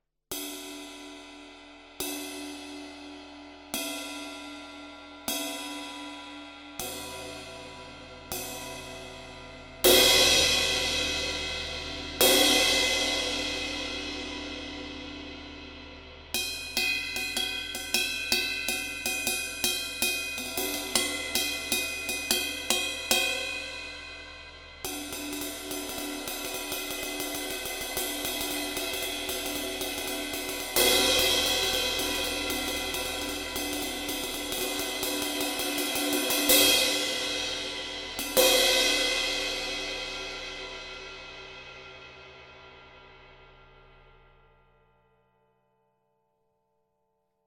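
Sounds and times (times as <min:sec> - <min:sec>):
Byzance Thin Traditional 20 ride cymbal: 0:06.8 - 0:42.2.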